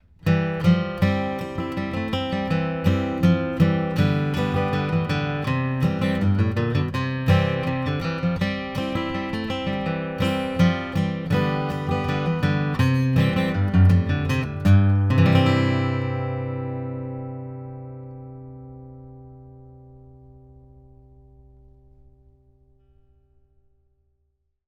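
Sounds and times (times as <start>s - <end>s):
acoustic guitar recorded with FET microphone: 0.0s - 23.4s.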